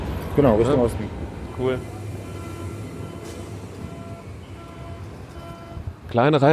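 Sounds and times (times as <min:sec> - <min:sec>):
full S-Bahn commuter train pulling away from the station: 0:00.0 - 0:06.5
speech: 0:00.4 - 0:02.0, 0:06.1 - 0:06.5.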